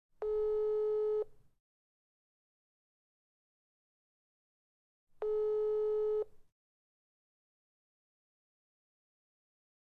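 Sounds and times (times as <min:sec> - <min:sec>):
mobile phone dial tone: 0:00.2 - 0:01.3, 0:05.2 - 0:06.3.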